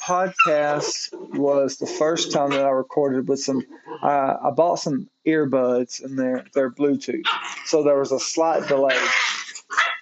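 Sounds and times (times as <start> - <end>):
puppies barking with high thin yips: 0.0 - 2.9, 3.5 - 4.2, 7.2 - 10.0
speech: 0.1 - 9.4.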